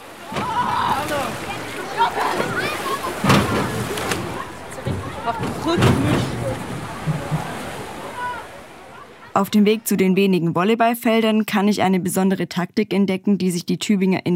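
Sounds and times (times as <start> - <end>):
murmur of voices and chatter at an outdoor swimming pool: 0.0 - 10.0
water splashing and sloshing in an outdoor swimming pool: 0.0 - 10.3
speech: 5.3 - 6.7, 9.4 - 14.3.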